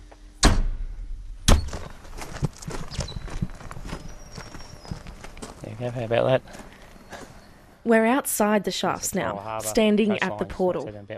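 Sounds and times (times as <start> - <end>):
door pushed shut with loud thumps: 1.4 - 1.9
speech: 5.8 - 6.7, 7.8 - 11.1.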